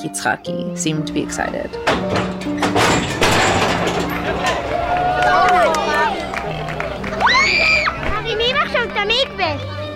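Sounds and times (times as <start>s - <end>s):
speech: 0.0s - 3.1s
lively outdoor crowd murmuring and chattering: 4.2s - 9.9s.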